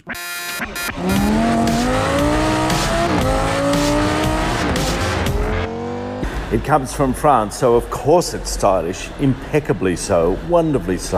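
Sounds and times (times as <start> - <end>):
speech: 0.1 - 1.6, 6.5 - 11.1
Citroën C3 car engine accelerating through gears: 0.9 - 7.9.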